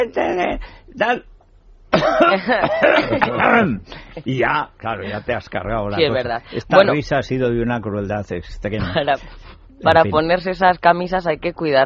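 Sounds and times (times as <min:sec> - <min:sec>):
speech: 0:00.0 - 0:01.3, 0:02.0 - 0:11.8
person coughing: 0:01.9 - 0:04.1.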